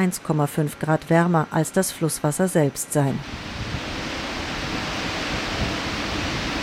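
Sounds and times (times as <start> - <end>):
speech: 0.0 - 3.5
heated cooling water falling over grids inside concrete nuclear power plant cooling tower: 3.2 - 6.6.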